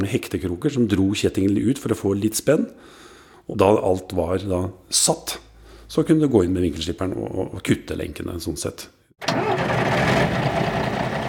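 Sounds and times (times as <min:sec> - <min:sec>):
speech: 0:00.0 - 0:09.6
Civil Defence truck engine starting and rumbling: 0:09.2 - 0:11.2.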